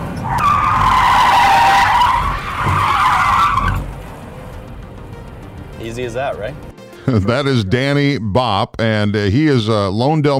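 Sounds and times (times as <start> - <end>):
car tyres squealing in a 360 spin using the e-brake: 0.0 - 4.2
speech: 6.0 - 10.3
laughter: 7.0 - 7.7.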